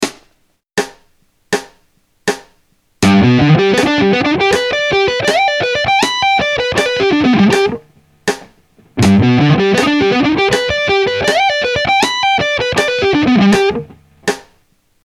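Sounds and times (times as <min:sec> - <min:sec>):
G major triad on rock guitar: 0:03.0 - 0:14.3.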